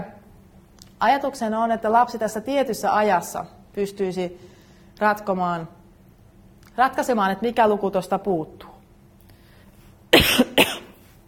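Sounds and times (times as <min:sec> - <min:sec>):
speech: 0:01.0 - 0:05.8, 0:06.8 - 0:08.7
person coughing: 0:10.1 - 0:11.1.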